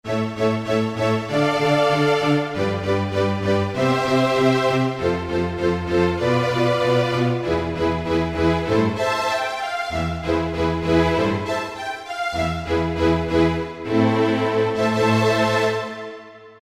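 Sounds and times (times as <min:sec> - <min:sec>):
Yamaha PSR-3000 strings playing allegro: 0:00.1 - 0:16.5.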